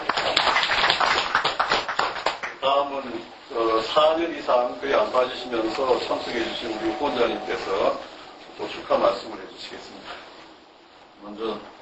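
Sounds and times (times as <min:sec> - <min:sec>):
audience applause at a gathering celebrating recovery milestones: 0:00.0 - 0:02.6
speech: 0:02.7 - 0:10.2, 0:11.2 - 0:11.8.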